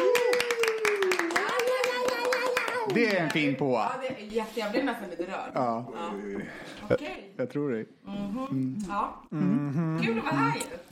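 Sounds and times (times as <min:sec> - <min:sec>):
audience applauding: 0:00.0 - 0:03.6
speech: 0:02.9 - 0:10.9.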